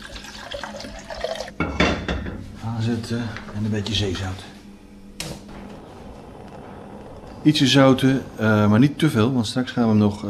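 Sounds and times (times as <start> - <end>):
water poured onto sushi rice: 0.0 - 1.6
speech: 2.8 - 4.5, 7.4 - 10.2.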